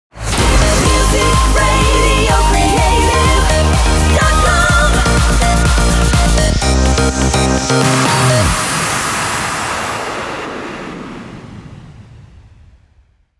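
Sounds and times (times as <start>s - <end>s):
outro music: 0.2s - 10.5s.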